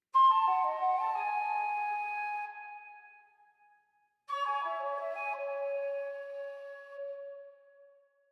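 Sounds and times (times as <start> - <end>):
flute fanfare: 0.2 - 2.8, 4.3 - 7.2.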